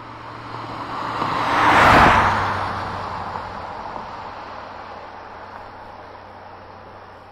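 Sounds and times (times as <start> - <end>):
car passing by fast: 0.0 - 7.3.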